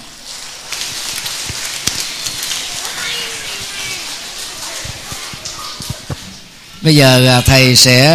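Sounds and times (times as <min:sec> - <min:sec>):
large crowd clapping loudly: 0:00.7 - 0:06.2
speech: 0:06.8 - 0:08.1.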